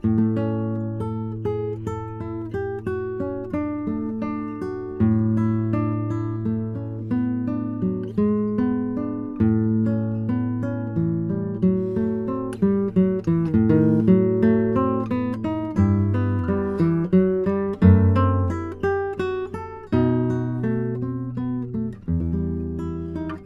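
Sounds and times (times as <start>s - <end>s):
guitar: 0.0s - 23.4s.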